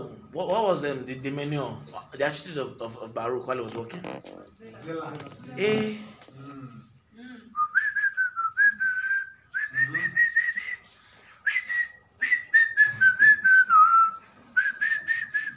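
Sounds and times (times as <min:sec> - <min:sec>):
speech: 0:00.4 - 0:06.8
person whistling a lively melody: 0:07.6 - 0:15.5.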